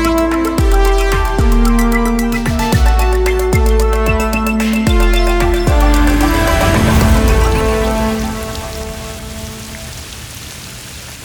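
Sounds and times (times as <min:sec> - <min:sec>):
low droning tones: 0:00.0 - 0:09.8
heavy rain falling outside a window: 0:04.9 - 0:11.2.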